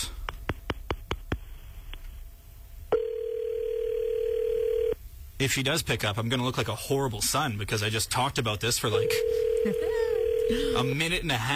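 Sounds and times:
steady low telephone tone: 0:02.9 - 0:05.0, 0:08.9 - 0:11.1
speech: 0:05.4 - 0:11.5.

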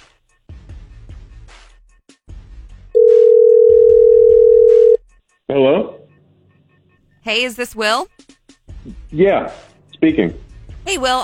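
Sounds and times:
ringing tone of an outgoing phone call: 0:03.0 - 0:05.0
speech: 0:05.6 - 0:05.9, 0:07.3 - 0:08.4, 0:09.1 - 0:11.2.

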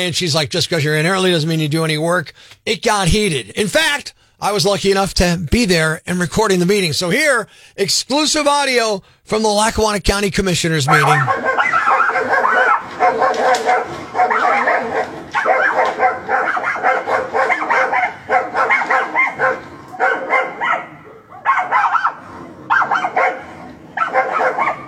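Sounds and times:
speech: 0:00.0 - 0:12.4
dog whimpering: 0:10.9 - 0:22.2
several dogs barking and yipping at one another: 0:10.9 - 0:24.8.

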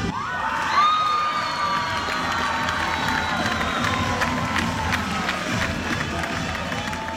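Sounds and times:
large excited crowd cheering at school announcement: 0:00.1 - 0:07.1.

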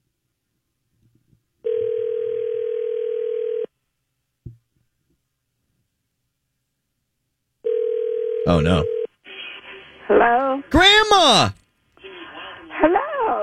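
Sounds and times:
telephone ringback tone heard through the line during an outgoing call: 0:01.6 - 0:03.7, 0:07.6 - 0:09.1
speech: 0:08.5 - 0:09.0, 0:10.2 - 0:11.6.

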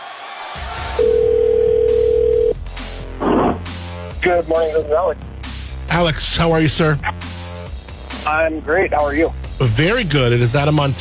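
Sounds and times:
telephone dial tone: 0:01.0 - 0:02.5
speech: 0:04.2 - 0:05.3, 0:05.9 - 0:07.2, 0:08.3 - 0:11.0.

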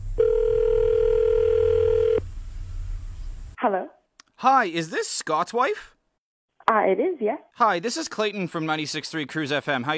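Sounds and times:
telephone ringing tone as a call is placed: 0:00.2 - 0:02.2
speech: 0:03.7 - 0:06.0, 0:06.7 - 0:09.9.

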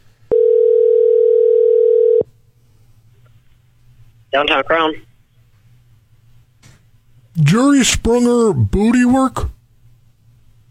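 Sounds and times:
telephone dial tone: 0:00.3 - 0:02.2
speech: 0:04.4 - 0:05.1, 0:07.4 - 0:09.6.

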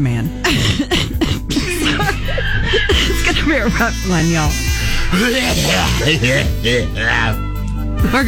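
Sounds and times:
person coughing: 0:00.4 - 0:03.5
laughter: 0:01.6 - 0:07.1
speech: 0:03.5 - 0:08.2.

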